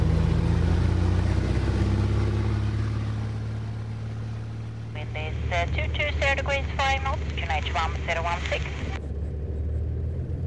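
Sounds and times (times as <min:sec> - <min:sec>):
small airplane engine revving for takeoff from Bromma in Stockholm: 0:00.0 - 0:06.2, 0:08.6 - 0:10.4
thin radio-like voice talking: 0:04.9 - 0:09.0.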